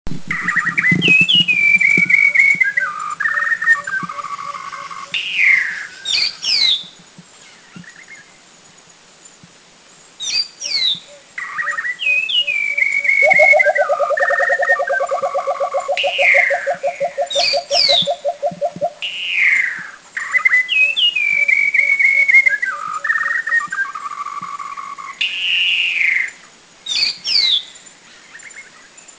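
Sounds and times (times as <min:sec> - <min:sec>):
Philippine Coucal calling in the Philippines: 0:00.2 - 0:06.8, 0:10.7 - 0:26.1
White-browed Shama calling in the Philippines: 0:00.3 - 0:08.3, 0:10.2 - 0:28.9.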